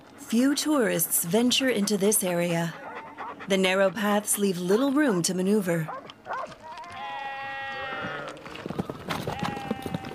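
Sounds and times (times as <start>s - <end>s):
hooves clicking and scuffing on stony ground: 0.0s - 10.1s
speech: 0.3s - 2.8s, 3.4s - 6.0s
sheep bleating on a narrow mountain path: 6.7s - 8.4s, 9.3s - 10.1s.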